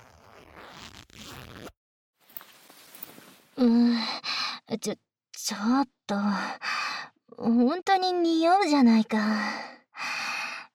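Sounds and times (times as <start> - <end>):
trouser zipper being pulled down: 0.0 - 3.5
speech: 3.6 - 4.1, 4.7 - 6.7, 7.4 - 9.8.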